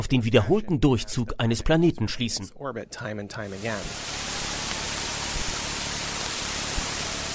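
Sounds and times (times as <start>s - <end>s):
speech: 0.0s - 4.3s
sonified Kepler telescope raw data as chaotic static-like hiss: 3.4s - 7.3s.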